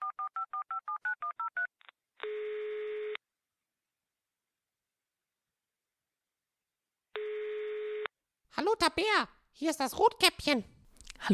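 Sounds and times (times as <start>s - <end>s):
mobile phone ringback tone: 0.0s - 3.2s, 7.2s - 8.1s
speech: 8.6s - 11.3s.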